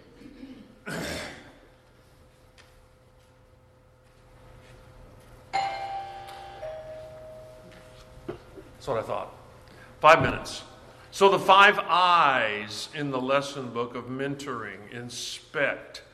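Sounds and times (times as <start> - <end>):
bell struck once ringing with shimmering tone: 5.6 - 8.3
speech: 8.8 - 9.4, 10.0 - 16.1.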